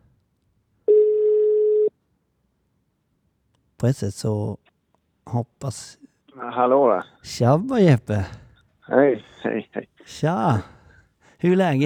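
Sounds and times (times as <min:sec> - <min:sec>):
phone call ringback tone: 0:00.9 - 0:01.9
speech: 0:03.8 - 0:04.7, 0:05.3 - 0:06.0, 0:06.6 - 0:10.8, 0:11.4 - 0:11.8.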